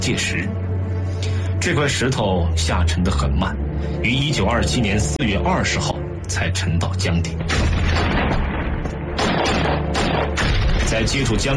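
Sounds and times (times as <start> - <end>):
speech: 0.1 - 0.6, 1.6 - 7.6, 11.0 - 11.5
dense gunfire barrage with booming low end: 7.5 - 11.5.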